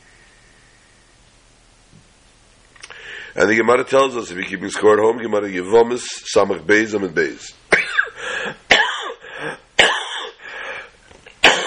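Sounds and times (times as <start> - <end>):
raspy breaths: 2.8 - 3.4, 8.2 - 8.6, 9.2 - 9.7, 10.4 - 11.0
speech: 3.4 - 7.6
man clearing throat: 7.7 - 10.4, 11.4 - 11.6
man coughing: 7.7 - 10.5, 11.4 - 11.6.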